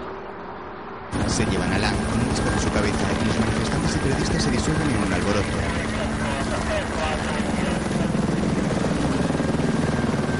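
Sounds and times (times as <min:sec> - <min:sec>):
speech: 0:01.1 - 0:05.9
police helicopter rotor chopping: 0:01.1 - 0:10.3
indistinct voices: 0:01.4 - 0:08.3.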